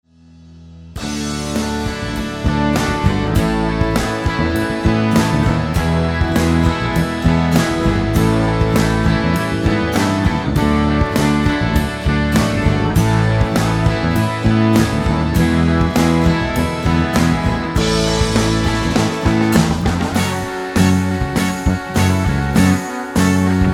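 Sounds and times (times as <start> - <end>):
instrumental hymn: 1.0 - 23.7.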